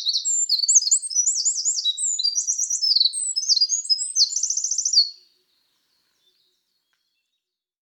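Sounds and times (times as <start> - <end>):
Eurasian wren Troglodytes troglodytes singing: 0.0 - 5.2.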